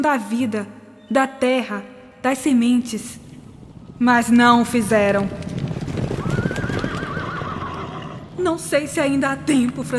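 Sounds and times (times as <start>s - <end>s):
speech: 0.0s - 3.3s, 4.0s - 5.5s, 8.4s - 9.9s
horses galloping in the distance: 2.8s - 9.9s
horse whinnying: 5.7s - 8.4s.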